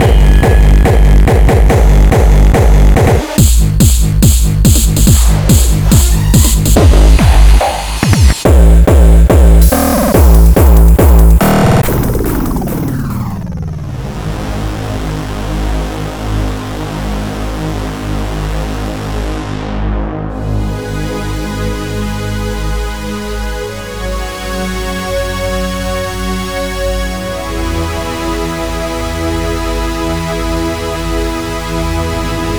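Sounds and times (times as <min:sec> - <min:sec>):
hardstyle music loop: 0:00.0 - 0:16.4, 0:20.3 - 0:32.5
hardcore music samples: 0:00.0 - 0:32.5.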